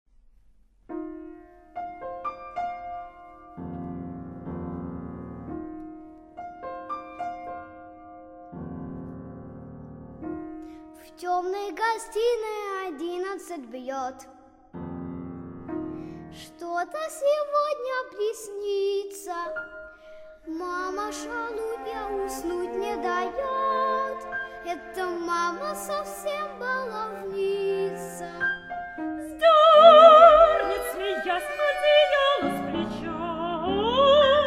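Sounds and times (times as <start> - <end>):
piano playing: 0.9 - 13.7, 14.7 - 34.4
child soprano singing: 11.0 - 14.4, 16.3 - 19.6, 20.4 - 34.4
alto singing: 20.5 - 34.4
cello playing: 20.5 - 34.4.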